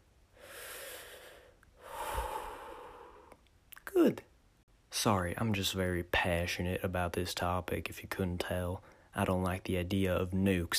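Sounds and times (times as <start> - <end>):
deep breathing: 0.3 - 3.4
speech: 4.0 - 4.3, 4.9 - 10.7.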